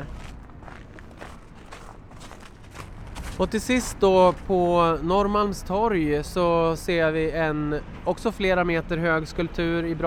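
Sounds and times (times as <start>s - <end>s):
soft scuffing footsteps walking between public bronze sculptures: 0.0s - 4.5s
speech: 3.4s - 10.0s.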